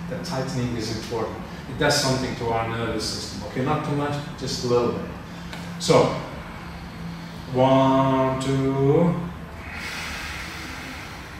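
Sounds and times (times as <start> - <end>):
speech: 0.1 - 5.2, 5.8 - 6.3, 7.5 - 9.3
long steady deep belly breath inhale: 5.2 - 7.6, 9.5 - 11.3.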